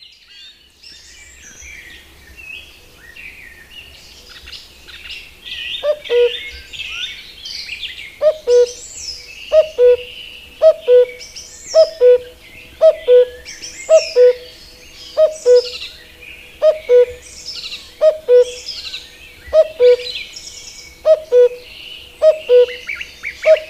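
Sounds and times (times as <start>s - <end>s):
birds singing and twittering: 0.0s - 23.6s
common cuckoo calling: 5.7s - 7.2s, 8.2s - 23.6s.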